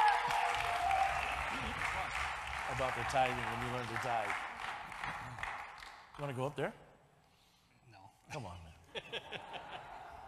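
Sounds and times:
voices cheering: 0.0s - 3.6s
crowd clapping: 0.0s - 6.5s
speech: 2.7s - 4.5s, 6.2s - 6.8s, 8.3s - 10.0s
laughter: 8.9s - 10.2s.

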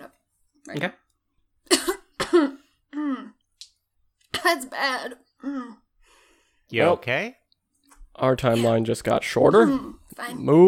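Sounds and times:
speech: 0.7s - 1.0s, 4.4s - 5.8s, 6.7s - 7.4s, 8.2s - 10.6s
harsh coughs: 1.7s - 2.8s.

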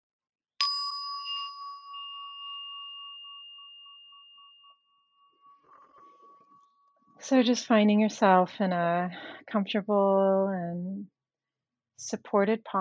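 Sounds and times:
meditation bell ringing: 0.6s - 7.2s
speech: 7.2s - 11.2s, 12.0s - 12.7s.

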